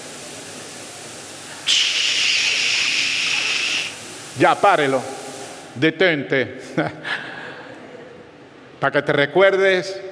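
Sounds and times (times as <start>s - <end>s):
steady broadband static hiss: 0.0s - 5.8s
speech: 1.7s - 1.9s, 4.4s - 5.2s, 5.8s - 7.0s, 8.8s - 10.0s.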